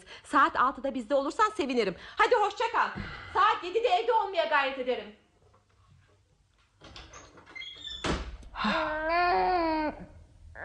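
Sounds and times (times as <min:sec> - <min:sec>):
speech: 0:00.3 - 0:05.2, 0:08.6 - 0:10.6
door slamming shut: 0:07.7 - 0:08.4.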